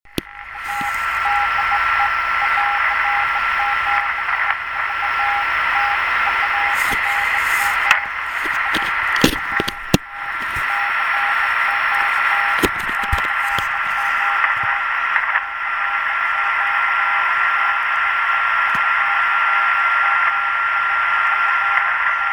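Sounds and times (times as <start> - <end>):
QRP amateur radio CQ call: 0.1 - 22.3.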